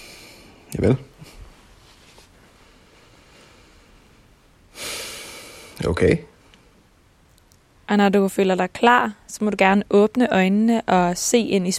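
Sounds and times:
deep breath drawn in: 0.0s - 0.7s, 2.6s - 5.8s
faint steady hush: 0.0s - 11.7s
speech: 0.7s - 1.4s, 5.8s - 6.3s, 7.9s - 11.7s.

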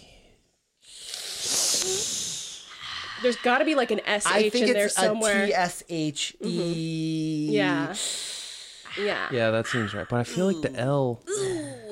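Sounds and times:
long hissing inhale through the teeth: 0.8s - 3.6s, 8.0s - 8.9s
speech: 3.2s - 8.2s, 9.0s - 11.8s.

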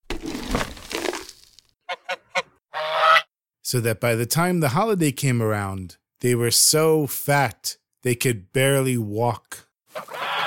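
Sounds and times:
rough crunching and rustling: 0.0s - 1.7s
goose honking: 1.9s - 3.2s
speech: 3.7s - 10.2s.

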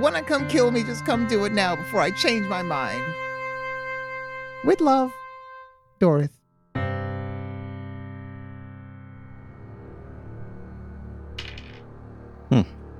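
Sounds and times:
speech: 0.0s - 3.2s, 4.6s - 5.2s, 6.0s - 6.4s
dice clattering on a table: 11.4s - 11.8s.

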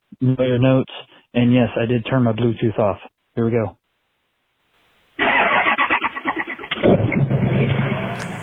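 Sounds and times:
speech: 0.2s - 3.8s
Ford Power Stroke diesel engine cranking and starting: 5.2s - 8.4s.

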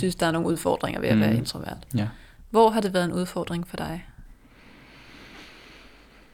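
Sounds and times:
speech: 0.0s - 4.1s
long deep inhale before speaking: 4.4s - 6.3s.

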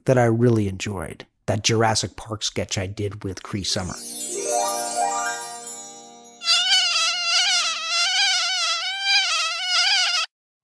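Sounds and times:
speech: 0.0s - 4.3s
loud high-pitched mosquito-like buzz: 6.3s - 10.3s.

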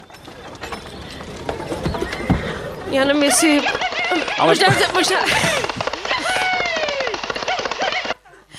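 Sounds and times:
hooves of a ridden horse clip-clopping: 0.0s - 8.2s
speech: 2.9s - 5.8s
laughter: 3.2s - 8.5s.

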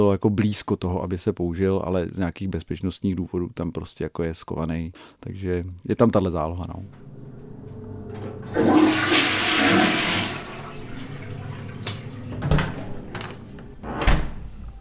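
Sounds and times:
speech: 0.0s - 7.1s, 8.1s - 9.0s
sharp clunks and knocks: 6.9s - 8.5s, 11.8s - 14.4s
toilet flushing with rushing water and trickling refill: 6.9s - 13.8s.

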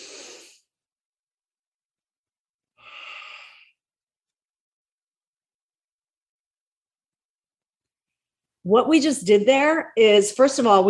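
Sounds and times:
deep breath in through the nose: 0.0s - 0.7s, 2.8s - 3.7s
speech: 8.7s - 10.8s.

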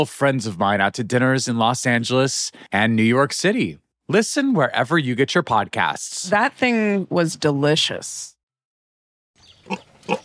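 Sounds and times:
speech: 0.0s - 8.3s, 9.7s - 10.2s
trained hogs grunting: 9.6s - 10.2s.

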